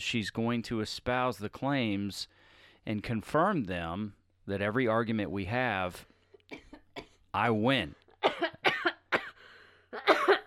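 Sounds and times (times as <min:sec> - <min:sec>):
speech: 0:00.0 - 0:06.7, 0:07.4 - 0:08.0
harsh hacking coughs: 0:06.5 - 0:07.2, 0:08.1 - 0:10.4.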